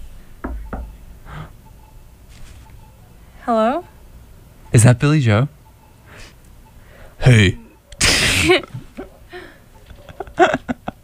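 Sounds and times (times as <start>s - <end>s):
sharp knocks: 0.4s - 0.9s
speech: 3.5s - 3.9s, 4.7s - 5.6s, 7.3s - 7.6s, 8.4s - 8.7s
laughter: 8.3s - 11.0s.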